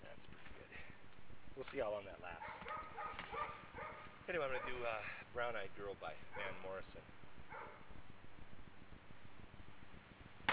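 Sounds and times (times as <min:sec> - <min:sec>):
low rumbling background: 0:00.0 - 0:10.5
speech: 0:01.6 - 0:03.7, 0:04.3 - 0:07.8
dog barking: 0:02.4 - 0:04.9, 0:06.3 - 0:06.8, 0:07.5 - 0:07.9.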